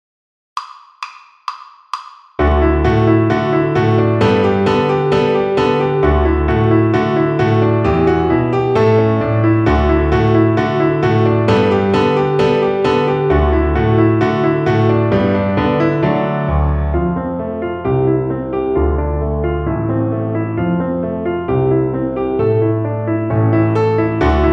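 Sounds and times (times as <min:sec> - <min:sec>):
piano accompaniment: 0:02.4 - 0:24.5.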